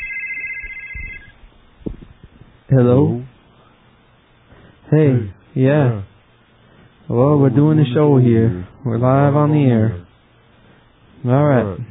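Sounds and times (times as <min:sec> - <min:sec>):
telephone ringer ringing with an electronic tone: 0:00.0 - 0:01.4
low thumps: 0:00.9 - 0:02.6
speech: 0:02.7 - 0:03.3, 0:04.9 - 0:06.0, 0:07.1 - 0:10.0, 0:11.2 - 0:11.9.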